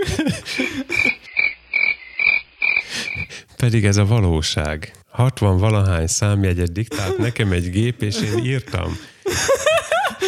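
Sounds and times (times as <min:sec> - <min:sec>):
laughter: 0:00.0 - 0:01.2, 0:06.8 - 0:10.2
crickets chirping: 0:00.2 - 0:03.4
speech: 0:03.6 - 0:09.8.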